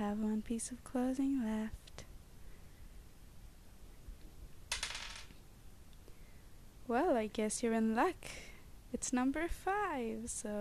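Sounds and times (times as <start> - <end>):
speech: 0.0 - 1.9, 6.9 - 10.5
dice clattering across a hard surface: 4.7 - 5.4.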